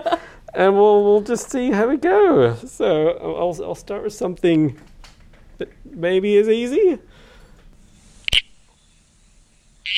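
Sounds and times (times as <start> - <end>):
faint noise: 0.0 - 9.9
speech: 0.1 - 4.9, 5.6 - 7.1
red-crowned toadlet Pseudophryne frog calls in New South Wales: 8.3 - 8.6.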